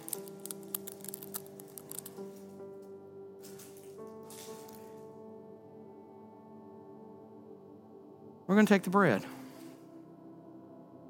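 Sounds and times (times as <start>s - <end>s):
thin plastic crinkling as a package top layer is peeled off: 0.0s - 2.8s, 3.4s - 5.1s
speech: 8.5s - 9.4s.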